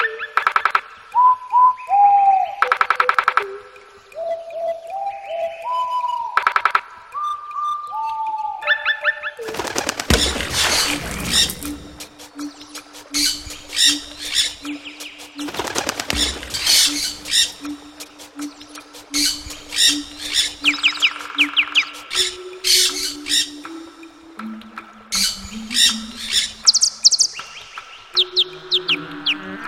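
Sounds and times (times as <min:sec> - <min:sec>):
bird chirps: 0:00.0 - 0:24.2, 0:25.1 - 0:29.6.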